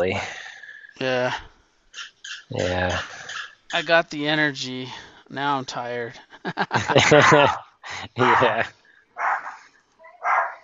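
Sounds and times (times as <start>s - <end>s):
speech: 0.0s - 0.4s, 1.0s - 8.8s
laughter: 6.2s - 8.7s
dog barking: 7.1s - 8.6s, 9.2s - 9.6s, 10.2s - 10.6s.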